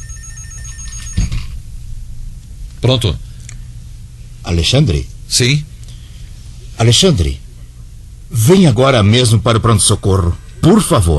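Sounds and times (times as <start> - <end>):
office telephone bell ringing: 0.0 - 1.5
speech: 2.8 - 3.3, 4.5 - 5.7, 6.8 - 7.4, 8.3 - 11.1.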